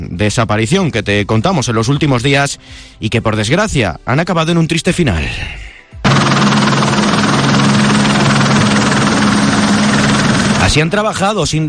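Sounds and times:
speech: 0.2 - 5.7, 10.7 - 11.6
helicopter flying overhead: 6.1 - 11.0.

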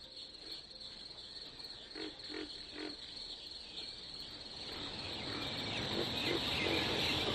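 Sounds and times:
crickets chirping in a rural night setting: 0.0 - 7.3.

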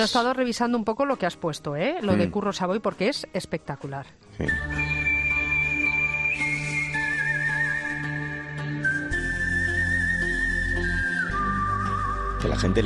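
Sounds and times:
speech: 0.0 - 5.0, 12.4 - 12.8
person whistling a slow spaghetti western film melody: 4.4 - 12.8.

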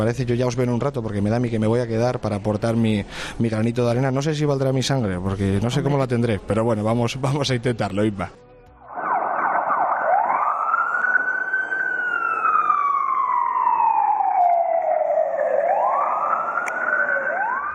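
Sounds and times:
speech: 0.0 - 8.4
fire engine siren wailing: 8.9 - 17.7.

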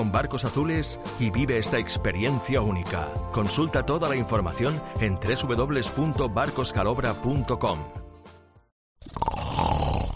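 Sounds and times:
speech: 0.0 - 8.0
sleeping adult snoring: 9.0 - 10.1.

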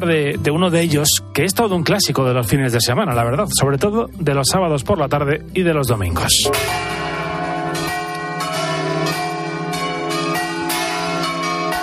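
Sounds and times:
speech: 0.0 - 7.1
church bells ringing for mass: 6.3 - 11.8.

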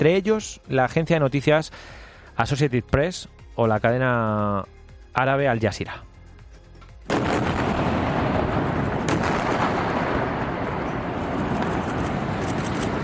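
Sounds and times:
speech: 0.0 - 6.1
loud building explosion: 7.1 - 13.0.

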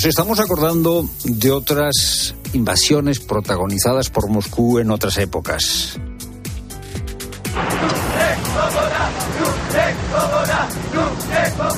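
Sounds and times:
speech: 0.0 - 6.1
vehicle rumble: 7.5 - 11.7
large crowd protesting outdoors in the street, shouting and babble: 7.6 - 11.7.

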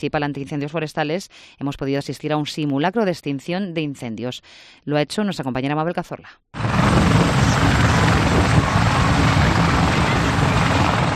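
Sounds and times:
speech: 0.0 - 7.4
two helicopters landing with rotors beating: 6.6 - 11.1.

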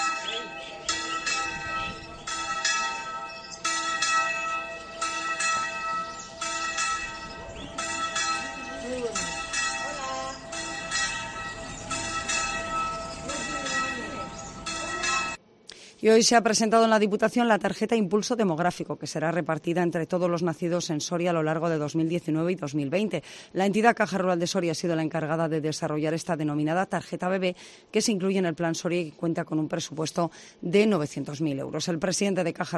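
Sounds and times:
church bells pealing: 0.0 - 15.4
speech: 16.0 - 32.7.

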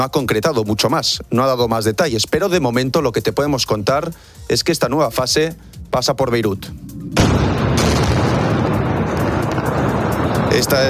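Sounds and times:
speech: 0.0 - 7.6, 10.6 - 10.8
heavy explosions from airstrikes on a city: 6.8 - 10.8.

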